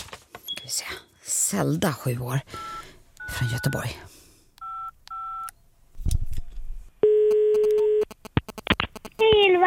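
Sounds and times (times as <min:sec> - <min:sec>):
speech: 0:00.7 - 0:02.6, 0:03.4 - 0:04.1
dual-tone keypad beeps of a phone being dialed: 0:02.6 - 0:03.9, 0:04.6 - 0:05.5, 0:07.0 - 0:09.1
steady loud telephone ringing tone: 0:04.6 - 0:05.5, 0:07.0 - 0:08.2
sharp clicks: 0:07.6 - 0:09.3.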